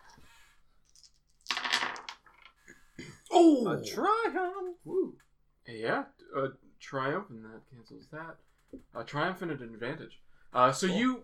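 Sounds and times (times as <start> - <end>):
dice rolled across a hard surface: 0.9 - 2.6
speech: 3.4 - 11.2.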